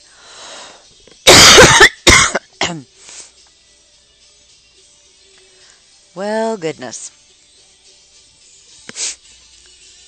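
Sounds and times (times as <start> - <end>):
faint breath: 0.0 - 0.9, 5.4 - 6.0
harsh explosive coughing fit: 1.3 - 2.9
speech: 2.7 - 3.0, 6.2 - 7.2.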